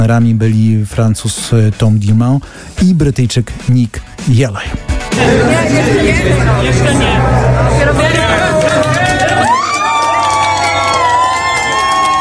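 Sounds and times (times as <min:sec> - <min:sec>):
speech: 0:00.0 - 0:08.9
steady low rumble: 0:05.2 - 0:09.7
racing team cheering and shouting in a pit garage: 0:05.2 - 0:12.1.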